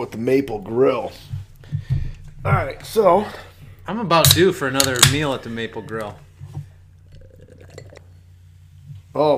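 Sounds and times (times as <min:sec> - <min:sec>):
speech: 0:00.0 - 0:01.4, 0:02.4 - 0:06.2, 0:09.2 - 0:09.3
drink poured into a glass: 0:07.1 - 0:08.2.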